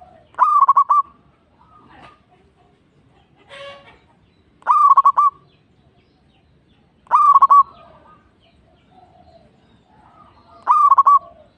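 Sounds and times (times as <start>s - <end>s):
zebra dove song: 0.0s - 2.4s, 4.6s - 5.5s, 7.0s - 11.5s.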